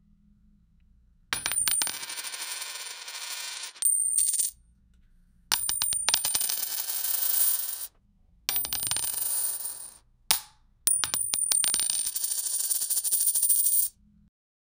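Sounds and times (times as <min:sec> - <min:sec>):
coins clinking: 0:01.4 - 0:04.6, 0:05.5 - 0:07.9, 0:08.5 - 0:13.9.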